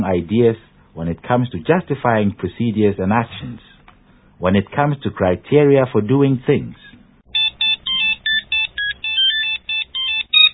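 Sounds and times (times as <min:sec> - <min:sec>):
speech: 0:00.0 - 0:03.7, 0:04.4 - 0:06.8
telephone ringing with an electronic melody: 0:07.3 - 0:10.5.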